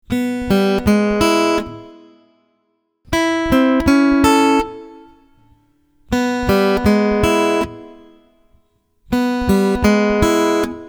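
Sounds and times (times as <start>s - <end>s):
easy blues melody line on acoustic guitar: 0.1s - 1.9s, 3.1s - 10.8s.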